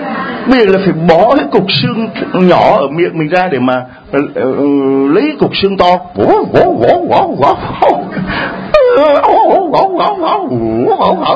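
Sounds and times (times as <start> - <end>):
speech: 0.5 - 8.0, 9.0 - 11.3
dog growling and howling over a bone: 6.2 - 8.1, 8.8 - 11.3.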